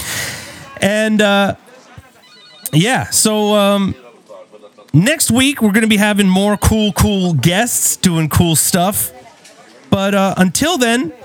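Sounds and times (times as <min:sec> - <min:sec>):
speech: 0:00.8 - 0:01.7, 0:02.7 - 0:04.0, 0:04.8 - 0:09.2, 0:09.9 - 0:11.2
telephone ringing unanswered with buzzy and warbling rings: 0:02.0 - 0:04.0, 0:05.0 - 0:09.1.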